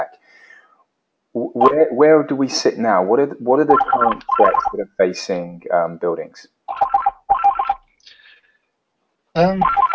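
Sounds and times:
speech: 1.3s - 7.0s, 9.4s - 9.9s
telephone ringing in warbling bursts: 3.7s - 4.8s, 6.7s - 7.8s, 9.6s - 9.9s.

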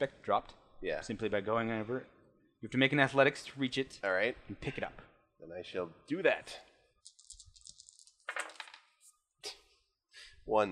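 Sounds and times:
speech: 0.0s - 6.7s, 10.5s - 10.7s
dice clattering across a hard tabletop: 7.0s - 9.0s.

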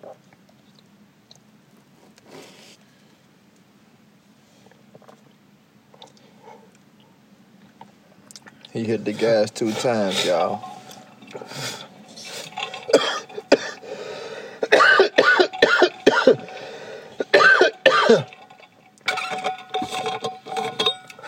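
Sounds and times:
speech: 8.8s - 10.7s, 18.1s - 18.3s
person coughing: 12.9s - 13.8s, 14.6s - 16.5s, 17.2s - 18.3s.

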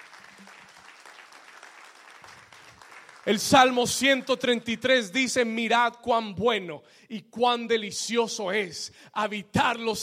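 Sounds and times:
audience applauding: 0.0s - 4.2s
speech: 3.3s - 10.0s.

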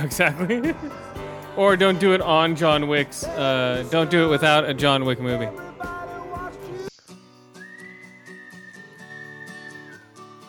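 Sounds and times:
speech: 0.0s - 5.6s
steady backing music: 0.0s - 10.4s
whistled soundtrack melody: 7.0s - 10.4s.

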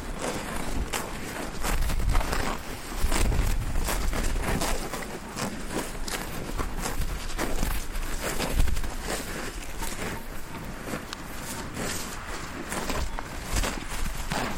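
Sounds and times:
cows eating in a meadow in Kruchenhausen: 0.0s - 14.5s.

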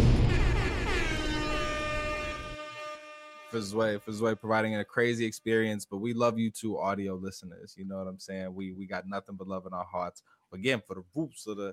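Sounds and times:
air horn sound effect blast: 0.0s - 4.6s
speech: 3.5s - 11.7s.

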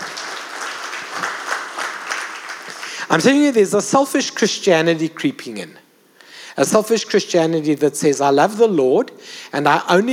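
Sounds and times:
crowd applauding: 0.0s - 3.2s
speech: 3.1s - 5.8s, 6.6s - 10.1s.

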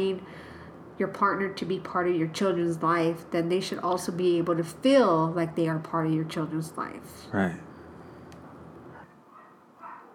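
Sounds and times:
speech: 0.0s - 0.4s, 1.0s - 7.7s
steady hiss: 0.0s - 10.1s
dogs barking: 8.8s - 10.1s.

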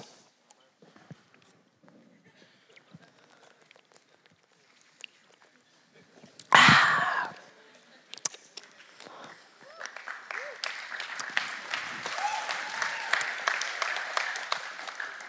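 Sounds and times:
audience applause: 9.6s - 15.2s
faint voices and cheers: 11.9s - 13.6s.

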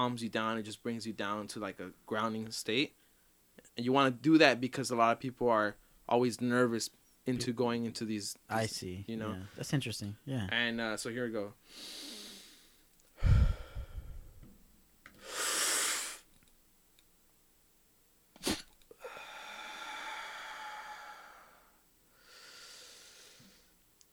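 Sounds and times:
speech: 0.0s - 3.0s, 3.8s - 12.0s
deep slow breaths taken while gathering up the next hit: 11.7s - 14.4s, 19.0s - 23.8s
sharp snort-like catch in breathing: 18.4s - 18.8s.

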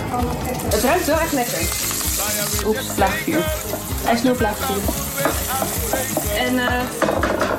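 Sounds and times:
speech: 0.2s - 7.5s
Surinamese spice paste sizzling in a pan over low heat: 0.9s - 6.6s.

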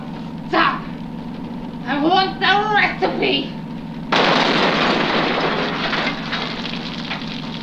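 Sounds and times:
roaring crackling rush of noise: 0.1s - 7.6s
speech: 3.2s - 3.6s
explosion: 4.1s - 7.6s.

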